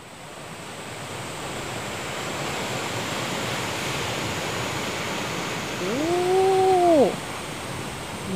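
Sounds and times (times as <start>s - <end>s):
ocean waves crashing against a rocky shore: 0.0s - 8.3s
short wavering cry, perhaps a bird: 5.8s - 7.2s.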